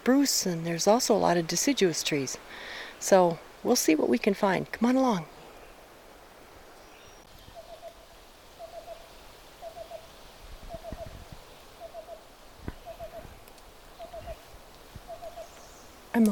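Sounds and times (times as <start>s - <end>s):
speech: 0.0s - 5.4s
black-billed cuckoo singing on a trail near a bog: 7.4s - 10.1s, 10.7s - 16.3s.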